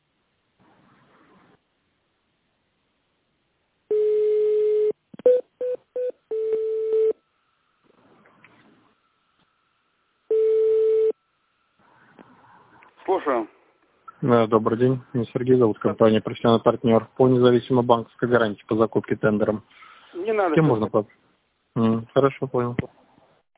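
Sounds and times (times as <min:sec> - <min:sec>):
telephone ringback tone on a call to a company: 0:03.9 - 0:07.1
speech: 0:13.2 - 0:13.6, 0:14.2 - 0:21.2, 0:21.8 - 0:23.0.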